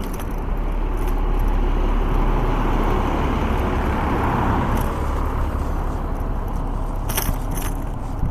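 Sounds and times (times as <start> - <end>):
brief metallic clinks: 0.0 - 1.6, 7.0 - 8.0
continuous street traffic noise: 0.0 - 8.2
large vehicle engine idling with a steady low rumble: 0.0 - 8.2.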